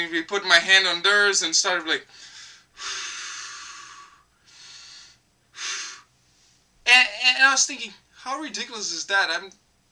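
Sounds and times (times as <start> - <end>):
speech: 0.0 - 3.0, 6.9 - 9.6
skydiving instructor on a plane doing slow paced breathing: 2.1 - 6.7.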